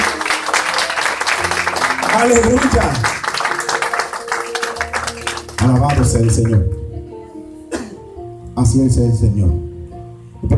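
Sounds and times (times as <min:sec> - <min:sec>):
congregation clapping: 0:00.0 - 0:06.9
speech: 0:02.1 - 0:03.2, 0:05.6 - 0:06.8, 0:08.6 - 0:09.7.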